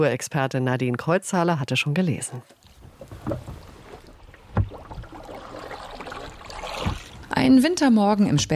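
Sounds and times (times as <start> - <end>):
speech: 0.0 - 2.6, 3.3 - 3.5, 7.4 - 8.5
water lapping against a small boat on the Havel: 2.0 - 8.5
knocks or paddle strokes: 2.1 - 7.6.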